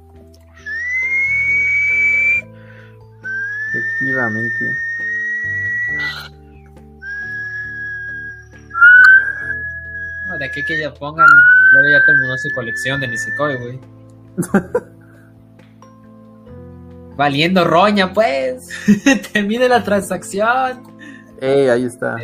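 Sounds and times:
production crew whistling long steady notes: 0.6s - 2.5s, 3.2s - 6.3s, 7.0s - 13.8s
speech: 3.8s - 4.9s, 10.4s - 14.9s, 17.2s - 22.2s
laughter: 14.4s - 15.0s.

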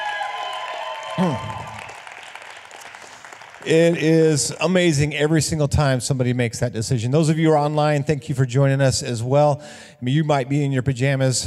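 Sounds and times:
person giving a loud falling whoop: 0.0s - 2.1s
crowd cheering and applauding a person who has just been baptized: 0.0s - 5.0s
speech: 1.2s - 1.6s, 3.6s - 11.4s.

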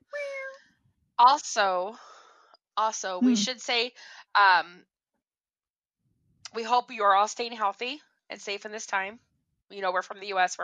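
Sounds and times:
person voicing drawn-out cat meows: 0.2s - 0.6s
speech: 1.2s - 2.1s, 2.8s - 4.9s, 6.5s - 10.6s.

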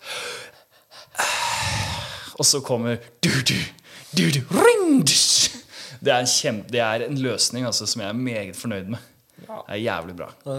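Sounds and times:
singer breathing heavily and panting close to the mic: 0.0s - 2.4s
speech: 2.4s - 10.5s.

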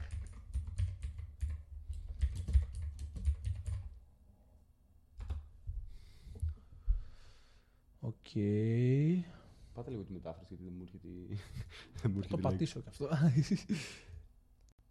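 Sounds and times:
typing and clicking on a computer keyboard: 0.0s - 4.0s, 5.2s - 5.5s
speech: 8.0s - 14.1s
laughter: 11.3s - 14.1s.

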